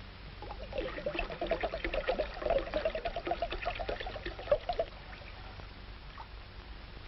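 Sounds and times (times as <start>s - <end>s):
grape juice pouring into a bowl: 0.4s - 5.6s.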